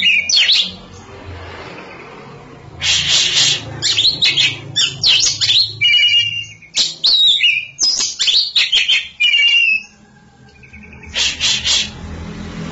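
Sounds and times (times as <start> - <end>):
Oriental magpie-robin singing: 0.0 - 12.0.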